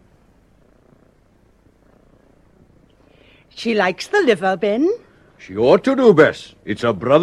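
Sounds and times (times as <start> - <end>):
cat purring: 0.0 - 5.4
speech: 3.5 - 7.2.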